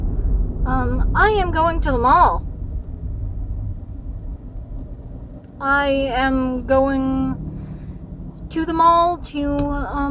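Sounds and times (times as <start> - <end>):
road noise inside a moving car: 0.0 - 10.1
speech: 0.8 - 2.5, 5.6 - 7.4, 8.5 - 10.1.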